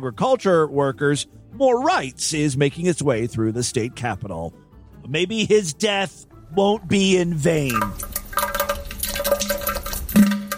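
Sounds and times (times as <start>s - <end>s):
speech: 0.0s - 8.2s
toilet flushing with rushing, gurgling water: 7.7s - 10.5s.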